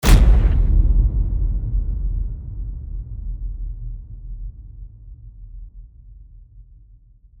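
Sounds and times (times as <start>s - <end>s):
epic low impact hit: 0.0s - 4.6s.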